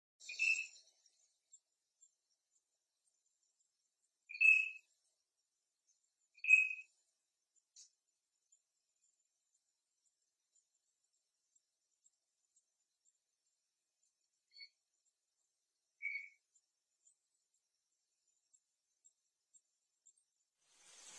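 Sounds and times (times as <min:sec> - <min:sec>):
gaio azul singing: 0:00.2 - 0:01.0, 0:04.3 - 0:04.9, 0:06.4 - 0:06.9, 0:16.0 - 0:16.4.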